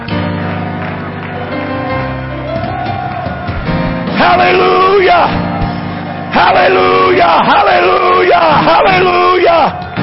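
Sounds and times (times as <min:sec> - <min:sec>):
audience shouting and cheering to God in triumph: 0:01.4 - 0:10.0
tonal backing: 0:02.5 - 0:09.2
speech: 0:04.2 - 0:05.4, 0:06.4 - 0:09.8.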